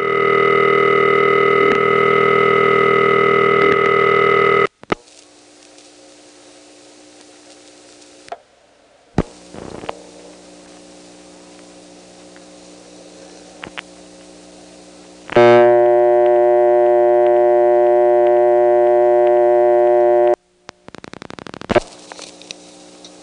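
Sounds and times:
telephone dial tone on a rotary dial test line: 0:00.0 - 0:04.7, 0:15.4 - 0:20.4.

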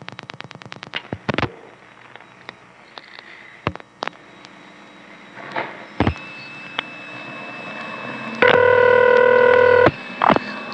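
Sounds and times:
multi-tone telephone signal: 0:05.3 - 0:10.5.

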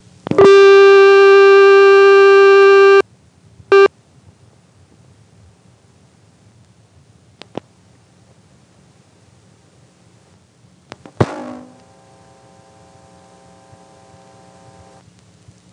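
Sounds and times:
harsh buzzing tone from a telephone exchange switch connecting: 0:00.4 - 0:03.0, 0:11.2 - 0:15.0.

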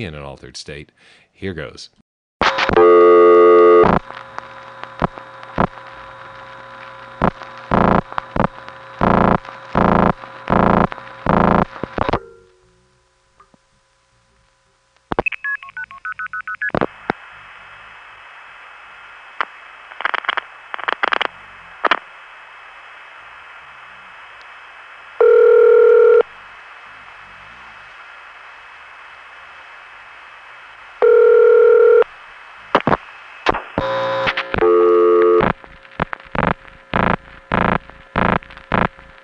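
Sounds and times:
speech: 0:00.0 - 0:02.0
steady telephone line tone hum: 0:02.4 - 0:15.2, 0:16.7 - 0:39.2
telephone dial tone: 0:02.7 - 0:04.0, 0:25.2 - 0:26.3, 0:31.0 - 0:32.1, 0:33.8 - 0:35.6.

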